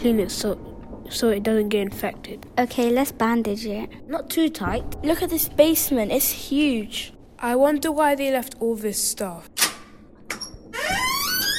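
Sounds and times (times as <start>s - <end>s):
speech: 0.0s - 9.6s
basement door hinges squealing creak: 9.6s - 11.5s.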